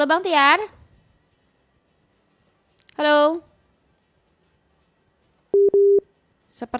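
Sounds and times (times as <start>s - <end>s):
speech: 0.0s - 0.8s, 3.0s - 3.5s, 6.6s - 6.7s
telephone busy signal from a broken call connection: 5.6s - 6.0s.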